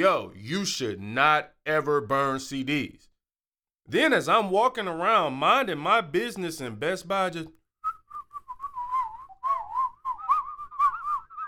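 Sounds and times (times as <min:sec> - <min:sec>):
speech: 0:00.0 - 0:03.1, 0:03.9 - 0:07.6
person whistling a wavering sliding tune: 0:07.8 - 0:11.4.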